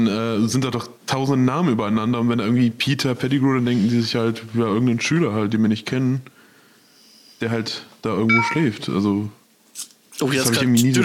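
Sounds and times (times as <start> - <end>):
speech: 0.0 - 6.4, 7.4 - 11.0
smartphone low battery warning beep: 8.3 - 8.7.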